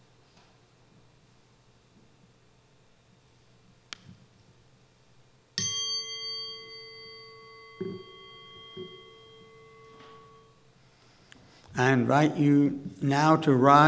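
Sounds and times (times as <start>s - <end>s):
struck singing bowl ringing: 5.6s - 10.8s
speech: 11.8s - 13.8s.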